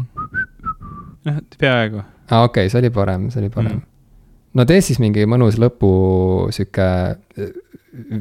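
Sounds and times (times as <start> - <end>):
person whistling a short wavering tune: 0.0 - 1.2
speech: 1.2 - 3.9, 4.5 - 8.2.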